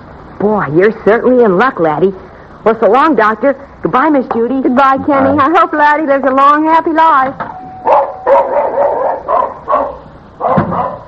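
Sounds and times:
speech: 0.4s - 8.5s
dog barking: 7.8s - 11.0s.

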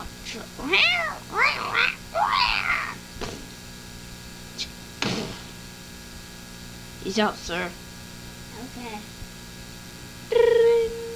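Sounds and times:
cat meowing: 0.0s - 3.0s
speech: 0.3s - 2.4s, 7.1s - 7.8s, 8.6s - 9.2s
sharp knocks or thumps: 5.0s - 5.8s.

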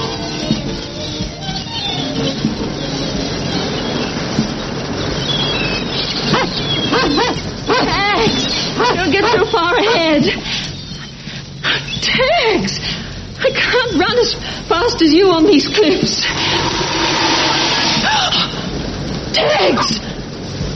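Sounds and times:
rumbling wash of outdoor noise: 0.0s - 20.7s
dog whining and yelping: 6.3s - 11.2s.

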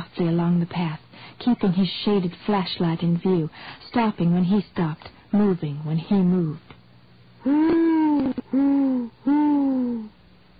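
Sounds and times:
speech: 0.2s - 6.8s, 7.4s - 9.5s
owl hooting in a dank dripping wood at night: 7.4s - 10.2s.

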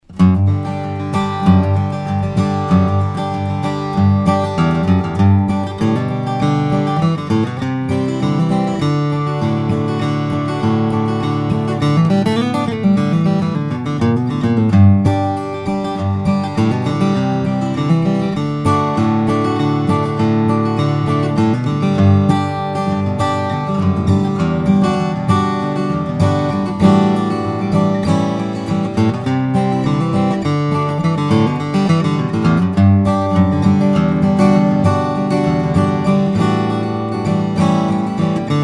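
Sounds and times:
flattop steel-string guitar: 0.0s - 38.6s.

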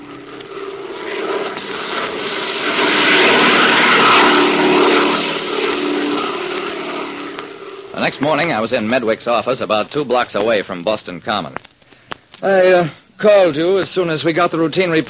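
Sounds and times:
propeller airplane engine droning in flight: 0.0s - 8.6s
speech: 8.1s - 11.7s, 12.4s - 15.0s.

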